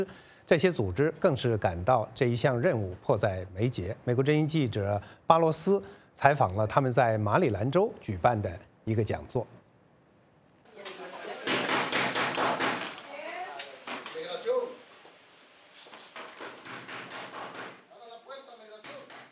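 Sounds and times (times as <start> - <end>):
speech: 0.0 - 9.6
loud hard knocking on a door: 11.5 - 13.0, 16.2 - 17.8.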